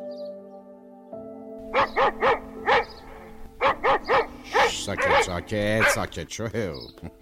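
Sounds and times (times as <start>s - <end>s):
dog barking: 1.7s - 6.1s
speech: 1.9s - 2.3s, 4.9s - 7.1s.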